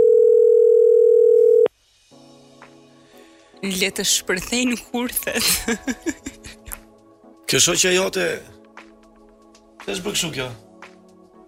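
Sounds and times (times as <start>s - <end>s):
telephone dial tone: 0.0s - 1.7s
speech: 3.6s - 6.6s, 7.5s - 8.6s, 9.8s - 10.7s
laughter: 5.4s - 6.8s.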